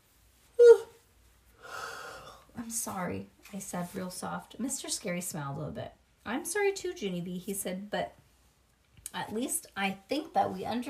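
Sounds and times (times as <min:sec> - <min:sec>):
sharp gasping deep breath with a slight whistling edge: 0:01.6 - 0:02.5
speech: 0:02.7 - 0:08.2, 0:09.1 - 0:10.8.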